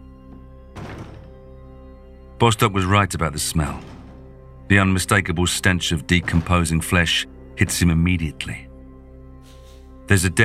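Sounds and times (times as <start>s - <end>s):
heavy thud of a door being broken down: 0.8s - 1.6s, 3.8s - 4.5s
speech: 2.4s - 3.9s, 4.7s - 8.7s, 10.1s - 10.4s.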